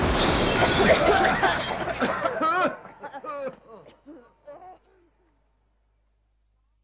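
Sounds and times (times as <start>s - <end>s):
skyrocket firework bursting with dense crackling explosion: 0.0s - 2.5s
people laughing: 0.8s - 4.8s.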